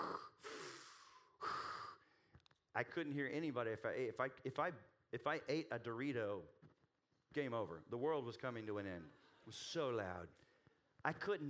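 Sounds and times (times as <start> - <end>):
person imitating loud rasping breathing through a respirator: 0.0 - 2.0
speech: 2.8 - 11.4.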